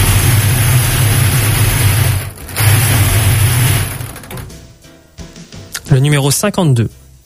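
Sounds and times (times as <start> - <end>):
lottery balls churning in a cranked ball cage: 0.0 - 4.6
low mechanical hum: 0.0 - 4.7
speech: 6.0 - 7.0.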